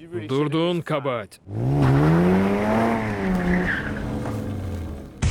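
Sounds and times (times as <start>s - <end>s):
speech: 0.1s - 2.8s
Mazda RX-7 sports car engine revving hard: 1.5s - 5.2s
Mazda RX-7 sports car tires squealing: 1.5s - 5.2s.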